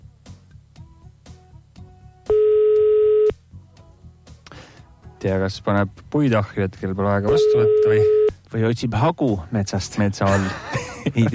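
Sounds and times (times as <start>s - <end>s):
quiet rhythmic music with a ticking beat: 0.0s - 5.2s, 7.2s - 8.5s
telephone ringback tone, steady loud buzzing pitch: 2.3s - 3.3s, 7.3s - 8.4s
speech: 5.2s - 11.3s
laughter: 10.0s - 11.3s.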